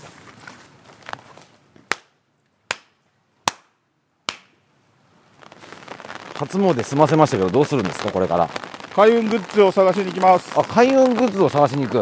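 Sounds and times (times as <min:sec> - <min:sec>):
quiet outdoor ambience: 0:00.0 - 0:12.0
ritual handclaps at a Shinto shrine: 0:02.7 - 0:02.9, 0:03.5 - 0:03.7, 0:04.3 - 0:04.5
speech: 0:06.4 - 0:12.0.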